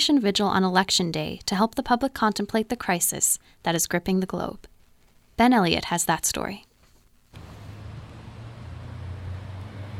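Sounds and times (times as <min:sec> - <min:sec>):
speech: 0:00.0 - 0:04.7, 0:05.4 - 0:06.7
car engines rumbling in downtown street traffic in Halifax at midday: 0:07.4 - 0:09.9
road noise of downtown street traffic in Halifax: 0:07.4 - 0:09.9.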